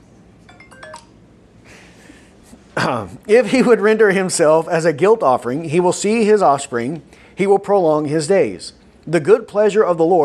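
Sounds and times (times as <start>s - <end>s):
hiss: 0.0s - 10.2s
phone ringing with electronic chime tones: 0.5s - 1.3s
speech: 2.8s - 10.2s.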